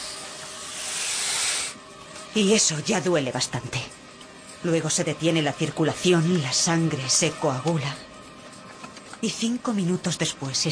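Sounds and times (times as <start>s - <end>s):
black cobra hissing: 0.0s - 1.9s
speech: 2.3s - 4.0s, 4.6s - 8.1s, 9.2s - 10.7s.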